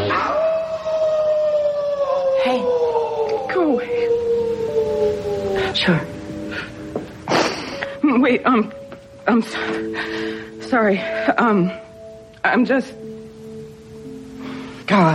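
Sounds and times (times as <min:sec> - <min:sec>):
person howling like a wolf: 0:00.1 - 0:06.9
speech: 0:05.8 - 0:06.1, 0:08.2 - 0:11.8, 0:12.4 - 0:13.1, 0:14.9 - 0:15.1.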